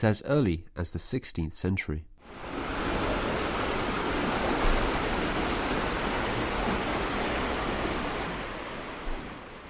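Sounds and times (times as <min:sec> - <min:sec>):
speech: 0:00.0 - 0:02.6
water rushing and splashing around a boat crossing a river: 0:02.3 - 0:09.6.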